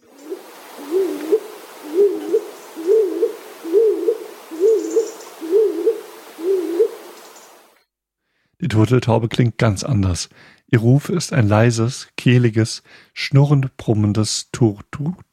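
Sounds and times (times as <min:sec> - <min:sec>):
stock dove cooing: 0:00.0 - 0:07.7
soft hiss: 0:00.0 - 0:07.8
speech: 0:08.8 - 0:15.3.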